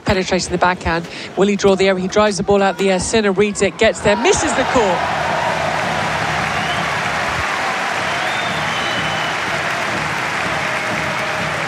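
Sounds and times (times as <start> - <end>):
speech: 0.1 - 5.3
tennis crowd cheering: 3.8 - 11.6
large tennis crowd clapping: 4.6 - 11.6.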